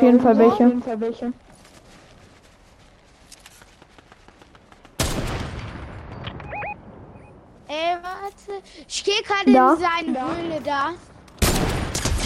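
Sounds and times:
speech: 0:00.0 - 0:01.5, 0:07.7 - 0:11.1
faint rapid video game gunshots: 0:04.6 - 0:05.9, 0:11.4 - 0:12.2.

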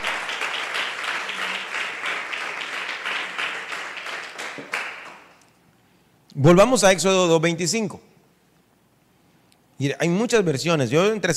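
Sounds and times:
congregation applauding: 0:00.0 - 0:05.5
speech: 0:06.4 - 0:08.1, 0:09.8 - 0:11.3.

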